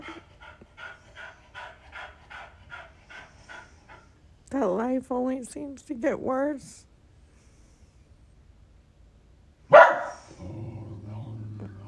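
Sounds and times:
low steady hum: 0.0s - 11.8s
speech: 4.5s - 6.9s
dog giving a sharp loud bark: 9.7s - 10.3s.

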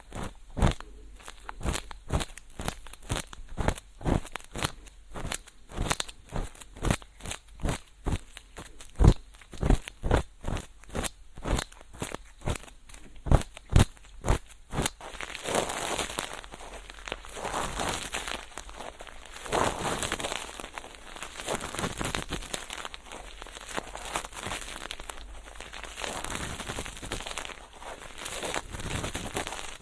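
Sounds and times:
crackling clicks of ear cleaning with a feather pick: 0.0s - 29.8s
faint steady hiss: 0.0s - 29.8s
feather pick brushing sweeps in ear cleaning: 15.0s - 29.8s.

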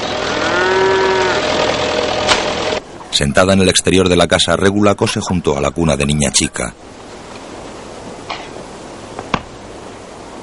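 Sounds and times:
bull mooing in a herd being fed straw bales: 0.0s - 2.1s
tractor engine idling: 1.3s - 2.8s
speech: 3.2s - 7.0s.

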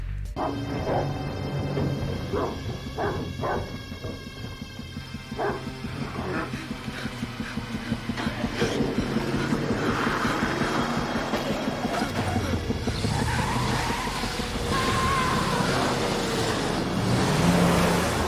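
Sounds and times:
dog barking: 0.4s - 1.2s, 2.2s - 3.9s, 5.3s - 6.5s
humming tonal drone: 0.4s - 18.2s.

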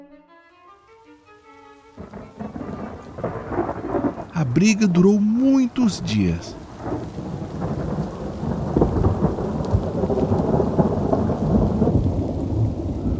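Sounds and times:
steady rainfall of a heavy storm: 0.9s - 13.1s
deep rolling thunder of a heavy storm: 2.0s - 4.3s, 6.6s - 13.1s
speech: 4.5s - 7.1s.

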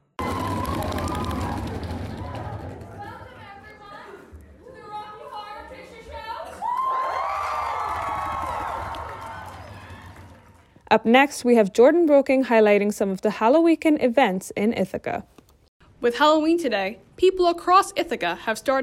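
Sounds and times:
large excited crowd cheering before a performance: 0.0s - 10.8s
overlapping shouts and whoops: 0.2s - 2.7s, 6.3s - 10.7s
speech: 10.9s - 15.3s, 16.0s - 18.8s.

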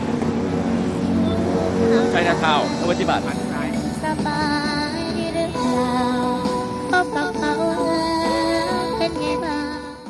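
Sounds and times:
dense rumble of city traffic with droning engines: 0.0s - 10.0s
speech: 2.2s - 3.6s.

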